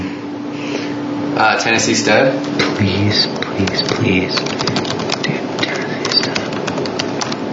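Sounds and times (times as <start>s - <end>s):
faint hum: 0.0s - 7.5s
speech: 1.4s - 5.0s
keyboard typing: 3.3s - 7.4s.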